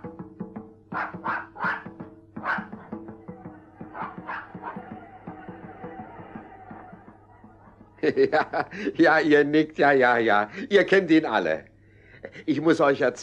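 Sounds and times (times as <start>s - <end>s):
small dog barking: 0.9s - 5.4s
laughter: 3.8s - 9.3s
speech: 8.0s - 11.7s, 12.4s - 13.2s.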